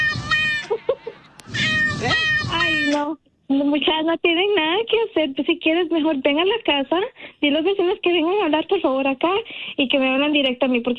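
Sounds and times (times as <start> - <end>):
cat meowing: 0.0 - 0.7, 1.5 - 3.0
speech: 3.0 - 10.9.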